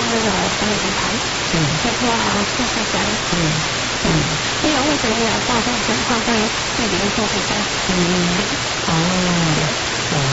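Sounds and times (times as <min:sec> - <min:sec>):
mountain waterfall roaring: 0:00.0 - 0:10.3
speech: 0:00.1 - 0:10.3.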